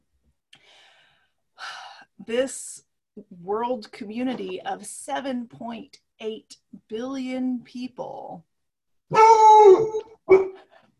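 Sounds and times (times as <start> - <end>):
speech: 2.2 - 8.5, 9.1 - 10.4
pet dog howling: 9.1 - 10.6.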